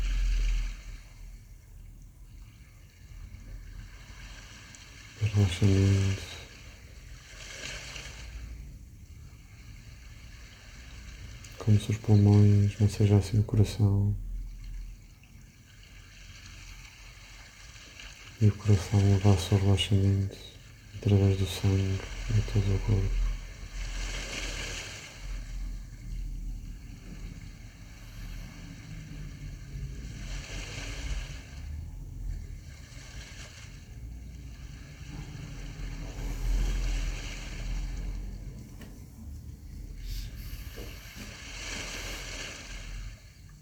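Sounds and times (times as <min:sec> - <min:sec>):
low rumble of surf: 0:00.0 - 0:43.6
small sea waves lapping on shore: 0:00.0 - 0:43.6
wind: 0:00.0 - 0:43.6
speech: 0:05.4 - 0:06.3, 0:11.7 - 0:14.2, 0:18.4 - 0:23.2.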